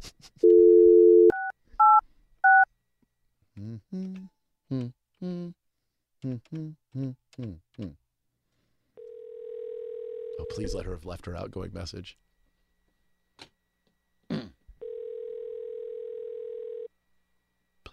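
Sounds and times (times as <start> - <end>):
telephone dial tone: 0.5 - 2.6, 9.0 - 10.5, 14.8 - 16.9
speech: 10.6 - 12.2.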